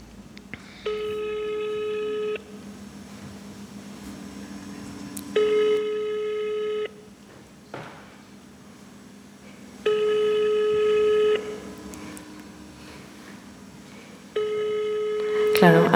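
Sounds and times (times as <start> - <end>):
low hum: 0.0 - 15.9
ringback tone of an unanswered telephone call: 0.7 - 7.1, 9.8 - 15.9.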